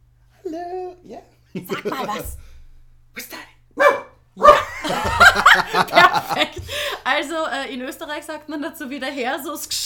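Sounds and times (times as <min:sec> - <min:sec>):
speech: 0:00.5 - 0:02.5, 0:04.9 - 0:09.8
laughter: 0:01.6 - 0:02.4, 0:04.5 - 0:07.0
Jack Russell terrier barking sharply: 0:03.8 - 0:04.7.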